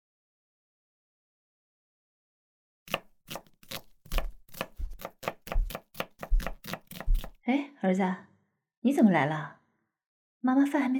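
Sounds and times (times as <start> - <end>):
knife chopping food on a board in a home kitchen: 2.9 - 7.4
speech: 7.5 - 9.6, 10.4 - 10.9.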